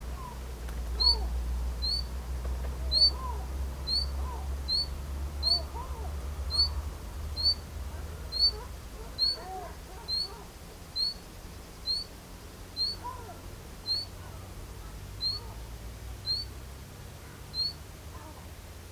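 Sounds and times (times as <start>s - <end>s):
Luscinia megarhynchos: 0.1s - 18.4s.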